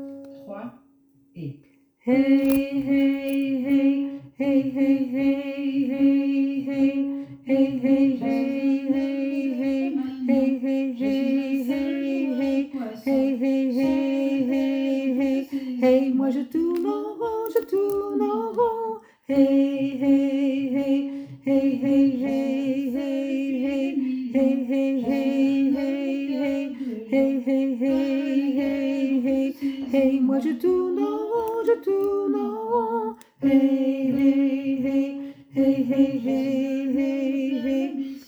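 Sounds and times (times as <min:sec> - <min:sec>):
soprano and alto voices in the background: 0:02.1 - 0:38.2.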